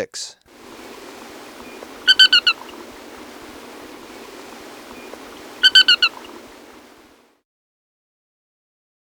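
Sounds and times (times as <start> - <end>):
faint background hiss: 0.3 - 7.2
Paramo tapaculo giving sharp ringing notes in Ecuador: 0.5 - 7.1.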